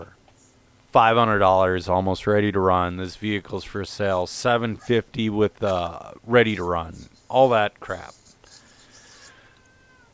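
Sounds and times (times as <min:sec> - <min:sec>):
speech: 0:01.0 - 0:08.2
cat meowing: 0:09.3 - 0:10.1.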